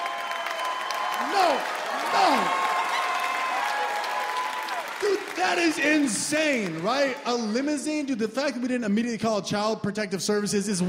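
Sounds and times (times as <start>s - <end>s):
faint crowd whoops: 0.0s - 6.1s
audience clapping: 0.0s - 9.2s
speech: 1.3s - 2.6s, 5.4s - 10.8s.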